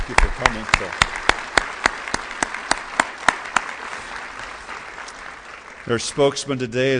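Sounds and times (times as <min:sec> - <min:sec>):
audience applause welcoming guests: 0:00.0 - 0:06.7
speech: 0:00.1 - 0:01.1, 0:05.9 - 0:06.9.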